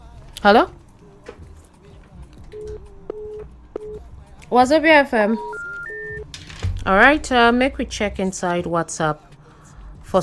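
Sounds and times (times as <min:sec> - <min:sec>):
speech: 0:00.4 - 0:00.8, 0:04.5 - 0:05.5, 0:06.8 - 0:09.3
telephone line tone on a radio call-in: 0:02.5 - 0:04.1, 0:05.2 - 0:06.3.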